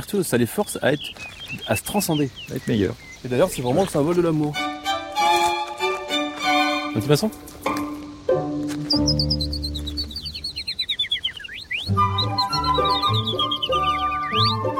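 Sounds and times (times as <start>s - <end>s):
speech: 0.0s - 4.7s, 7.0s - 7.8s
chaffinch singing: 0.0s - 5.0s, 6.1s - 14.7s
harmonic instrumental music: 4.4s - 10.6s, 11.9s - 14.7s.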